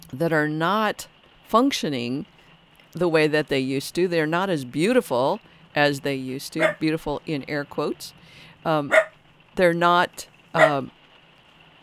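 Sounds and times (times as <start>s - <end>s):
speech: 0.1s - 11.0s
pet dog barking: 6.6s - 6.8s, 8.9s - 9.1s, 10.6s - 10.9s.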